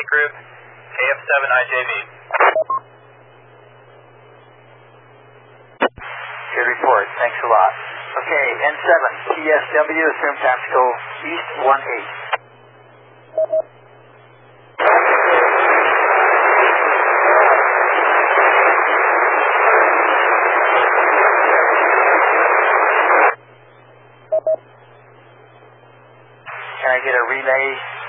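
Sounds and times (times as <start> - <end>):
speech: 0.0 - 2.9, 6.6 - 12.2, 13.4 - 13.7, 27.2 - 28.0
low hum: 0.0 - 28.0
radio static covering a weak station's transmission: 0.0 - 28.0
brief beeps: 2.5 - 2.9, 13.4 - 13.7, 24.3 - 24.6.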